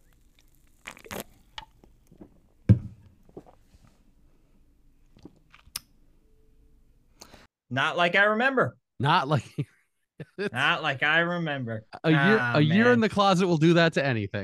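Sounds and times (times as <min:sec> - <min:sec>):
small clicks and mouth sounds: 0:00.0 - 0:02.2, 0:05.0 - 0:05.9
soft slurps of beer: 0:00.3 - 0:01.4
person sipping beer from a can: 0:00.3 - 0:01.7
beer can thump: 0:02.7 - 0:03.1
speech: 0:07.7 - 0:09.7, 0:10.4 - 0:14.4
laughter: 0:09.3 - 0:10.9.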